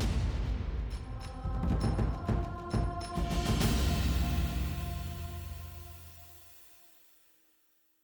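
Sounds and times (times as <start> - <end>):
drums: 0.0 - 6.4.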